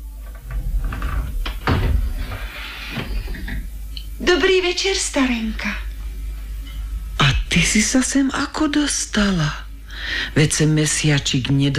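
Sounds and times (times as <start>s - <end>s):
low rumbling background: 0.0s - 11.4s
painted wooden door of a little house opening: 0.1s - 3.8s
speech: 4.3s - 5.8s, 7.6s - 11.7s.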